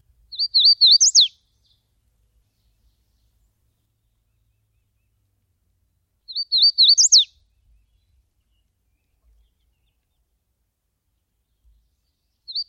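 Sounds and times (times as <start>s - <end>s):
bird twittering song: 0.3s - 5.2s, 6.3s - 10.4s, 11.2s - 12.6s.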